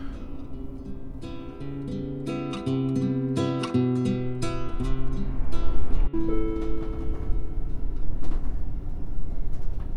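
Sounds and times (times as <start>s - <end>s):
regional train engine hum and rolling noise: 0.0s - 9.9s
regional train door closing electronic warning tones: 6.2s - 8.2s.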